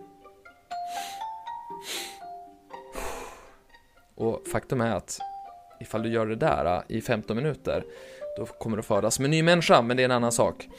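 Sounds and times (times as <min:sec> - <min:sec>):
soft music: 0:00.0 - 0:10.7
sharp breaths drawn in through the nose: 0:00.8 - 0:03.7
longer breath out: 0:00.9 - 0:02.3, 0:02.9 - 0:03.7
speech: 0:04.2 - 0:10.7.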